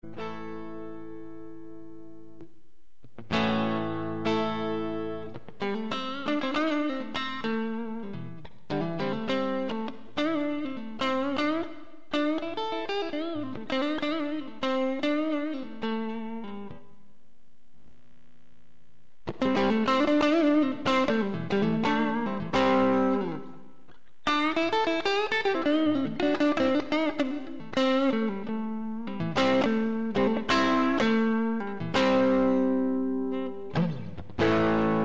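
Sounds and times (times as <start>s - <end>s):
Strat electric guitar through NPN boost: 0.0s - 2.5s, 3.1s - 17.0s, 19.2s - 35.0s.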